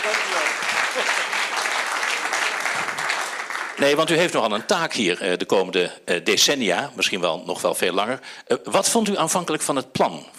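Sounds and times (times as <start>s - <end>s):
large audience applauding welcoming a guest psychologist: 0.0s - 4.6s
speech: 3.8s - 10.3s.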